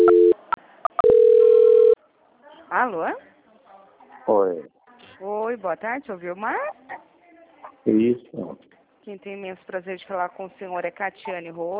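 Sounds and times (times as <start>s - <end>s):
telephone line tones during a call transfer: 0.0s - 0.4s, 1.0s - 2.0s
speech: 2.7s - 3.3s, 4.2s - 6.8s, 7.8s - 11.7s.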